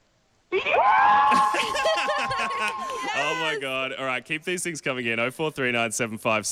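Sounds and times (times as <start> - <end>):
group of friends screaming: 0.5 - 3.6
laughter: 1.2 - 3.2
speech: 3.5 - 6.5.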